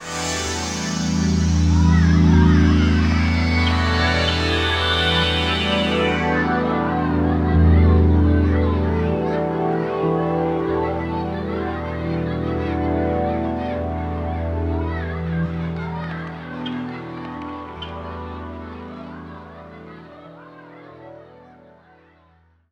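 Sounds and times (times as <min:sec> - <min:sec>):
jungle synth pad: 0:00.0 - 0:22.0.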